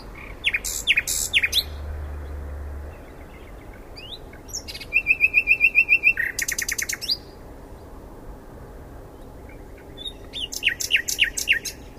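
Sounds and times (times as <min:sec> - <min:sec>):
common nightingale Luscinia megarhynchos song: 0:00.0 - 0:08.0, 0:09.1 - 0:11.9.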